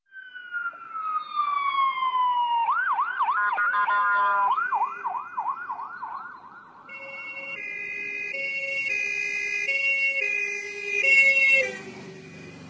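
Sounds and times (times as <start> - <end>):
Czech ambulance siren wailing and yelping: 0.1 - 12.6.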